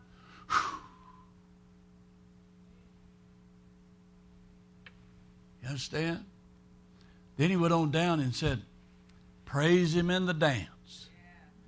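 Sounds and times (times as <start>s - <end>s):
faint steady hum: 0.0s - 11.6s
sharp breath offered as praise during a worship sermon: 0.1s - 1.3s
speech: 5.6s - 6.3s, 7.4s - 8.7s, 9.5s - 11.0s.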